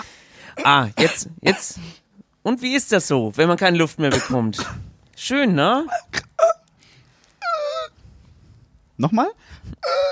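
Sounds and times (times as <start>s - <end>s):
person coughing into a microphone: 0.6s - 1.8s, 4.1s - 4.9s
speech: 0.6s - 6.2s, 9.0s - 9.7s.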